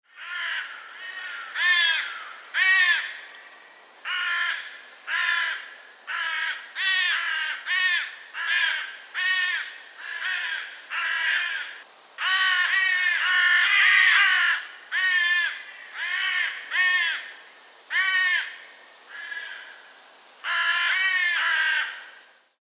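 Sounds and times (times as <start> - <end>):
Corvus corone flock calling in flight: 0.1 - 3.2, 4.1 - 17.3, 17.9 - 19.8, 20.4 - 22.2.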